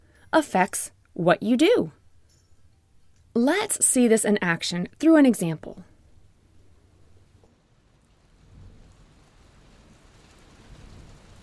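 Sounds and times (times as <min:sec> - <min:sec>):
speech: 0:00.3 - 0:02.0, 0:03.4 - 0:05.9
steady rain pouring down: 0:07.0 - 0:11.4.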